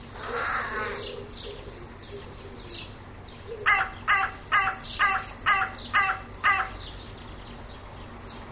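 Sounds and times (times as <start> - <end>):
Corvus corone carrion crow cawing: 0.2 - 1.0, 3.6 - 6.8.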